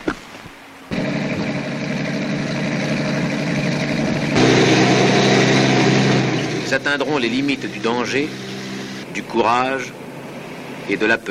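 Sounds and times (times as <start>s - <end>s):
truck engine starting up and rumbling: 0.0s - 11.3s
speech: 6.7s - 8.5s, 9.2s - 10.0s, 10.9s - 11.3s.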